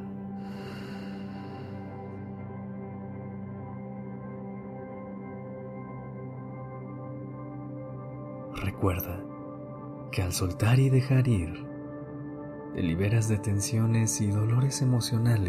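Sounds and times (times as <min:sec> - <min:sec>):
long breath exhaled during a guided breathing exercise: 0:00.4 - 0:02.2
speech: 0:08.6 - 0:09.3, 0:10.1 - 0:11.6, 0:12.7 - 0:15.4.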